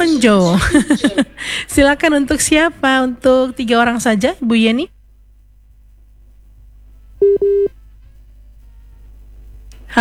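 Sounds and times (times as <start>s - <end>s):
speech: 0.0s - 5.0s, 7.2s - 7.8s
faint low hum: 0.0s - 9.9s
laughter: 0.5s - 1.7s
telephone ringback tone while a call is placed: 7.2s - 7.7s.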